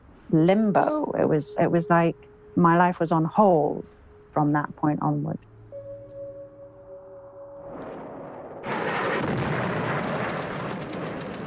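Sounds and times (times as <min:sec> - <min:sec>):
speech: 0:00.3 - 0:05.5
crackling impacts of bombardment: 0:07.2 - 0:11.4
heavy bombardment of Baghdad at night: 0:07.7 - 0:11.4.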